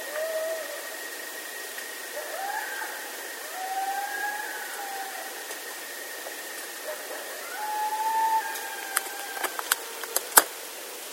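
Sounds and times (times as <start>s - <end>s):
coyote howling: 0.0s - 1.0s, 2.0s - 5.6s, 6.8s - 10.5s
hissing background noise: 0.0s - 11.1s.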